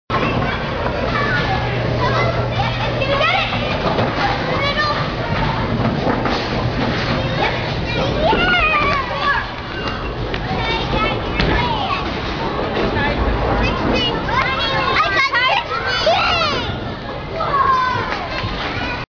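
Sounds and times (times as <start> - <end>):
bowling: 0.1 - 18.9.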